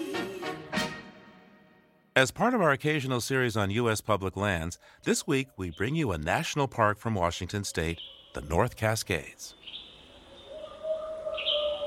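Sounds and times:
speech: 0:02.2 - 0:09.7
dense chorus of birdsong with chirps and whistles: 0:05.1 - 0:06.6, 0:07.7 - 0:11.8
owl hooting: 0:07.7 - 0:08.7, 0:09.5 - 0:11.8.

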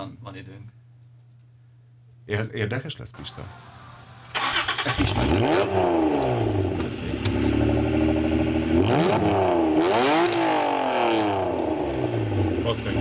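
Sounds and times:
speech: 0:00.0 - 0:00.8, 0:02.3 - 0:03.8, 0:04.8 - 0:07.3, 0:08.9 - 0:09.5
Honda NSX sports car engine revving hard: 0:03.5 - 0:13.0.

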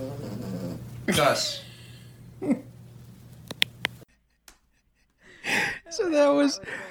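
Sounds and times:
dog snoring at night: 0:00.0 - 0:01.4
speech: 0:01.1 - 0:01.7, 0:02.4 - 0:02.7, 0:06.0 - 0:06.8.

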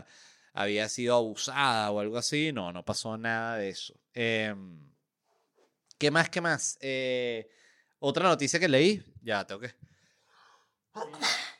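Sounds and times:
speech: 0:00.1 - 0:04.9, 0:06.0 - 0:09.9, 0:11.0 - 0:11.5
person sneezing after a breathy intake: 0:11.0 - 0:11.5.

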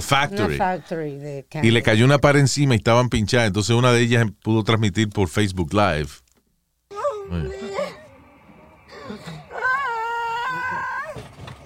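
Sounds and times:
speech: 0:00.0 - 0:06.2, 0:07.3 - 0:07.7
woman trapped under a fallen wall crying and wailing on a livestream: 0:06.9 - 0:08.1, 0:08.9 - 0:11.2
woman trapped under a fallen wall whimpering: 0:06.9 - 0:11.2.

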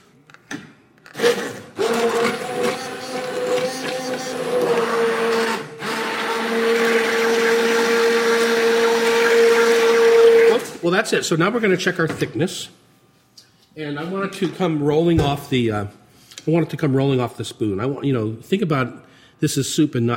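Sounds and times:
immersion blender pureeing hot soup in a pan: 0:01.1 - 0:10.8
speech: 0:11.0 - 0:12.8, 0:13.8 - 0:20.1.

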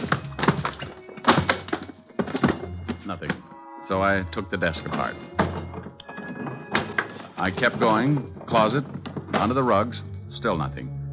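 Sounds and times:
books thumping and shuffling on shelves as a bookcase is searched: 0:00.0 - 0:03.4, 0:04.9 - 0:09.8
speech: 0:03.1 - 0:05.4, 0:07.4 - 0:10.9.

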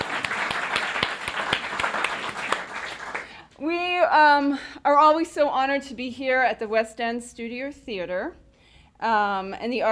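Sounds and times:
audience applause at a live storytelling event in a theater: 0:00.0 - 0:03.4
speech: 0:03.6 - 0:08.4, 0:09.0 - 0:09.9.

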